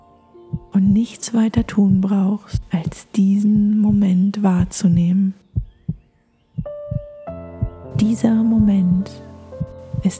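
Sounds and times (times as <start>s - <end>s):
soft sustained musical tones: 0.0s - 2.6s, 5.4s - 10.1s
deep heartbeat: 0.5s - 6.0s, 6.6s - 10.1s
speech: 0.7s - 5.4s, 8.0s - 9.3s.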